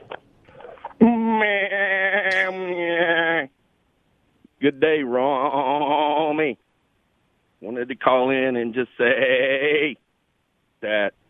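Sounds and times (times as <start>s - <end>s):
person imitating a goat bleating: 1.0s - 3.5s, 9.0s - 10.0s
speech: 4.6s - 6.7s, 7.6s - 10.0s, 10.8s - 11.2s.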